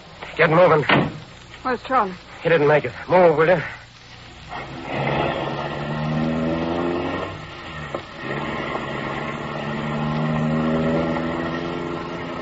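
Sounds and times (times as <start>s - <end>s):
speech: 0.4s - 3.8s
car engine idling: 4.2s - 12.4s.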